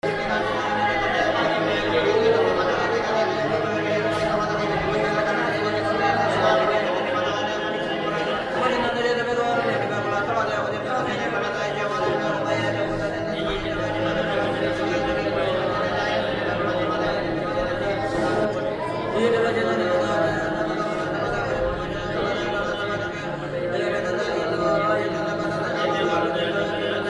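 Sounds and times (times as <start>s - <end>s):
religious Indian monks: 0.0s - 27.0s.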